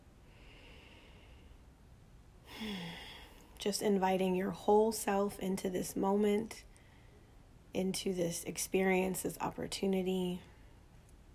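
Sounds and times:
deep breath in through nose and out mouth: 0.2s - 1.7s, 2.5s - 3.6s
speech: 3.6s - 6.7s, 7.7s - 10.5s.

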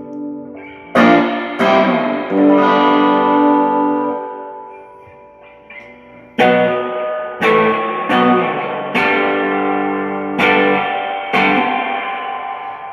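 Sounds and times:
electric guitar chords through an amp with heavy reverb: 0.0s - 12.9s.

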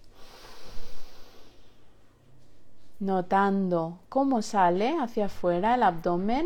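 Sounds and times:
slow deep inhalation through the nose: 0.0s - 2.0s
speech: 3.0s - 6.4s.

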